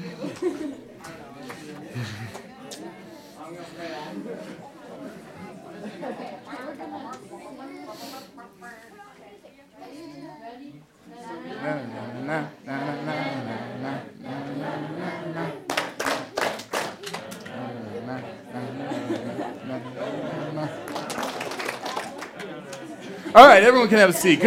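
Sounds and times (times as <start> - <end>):
laughter: 0.0 - 7.1, 11.2 - 24.4
group clapping in rhythm during a dance: 0.3 - 2.5, 11.6 - 23.1
speech: 23.4 - 24.4.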